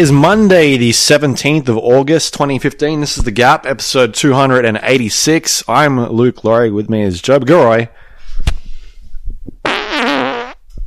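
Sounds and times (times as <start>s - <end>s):
speech: 0.0s - 8.5s
loud wet buzzing fart: 9.6s - 10.6s.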